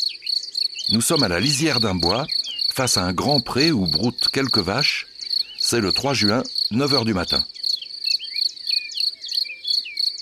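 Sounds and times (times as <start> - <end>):
field crickets stridulating in a sunny grassy meadow at a wood's edge: 0.0 - 10.2
speech: 0.9 - 5.1, 5.7 - 7.6.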